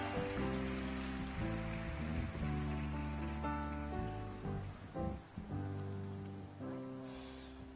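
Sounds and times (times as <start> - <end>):
crowd applauding a children's worship dance team: 0.0 - 4.9
loud instrumental music with sustained chords: 0.0 - 7.7.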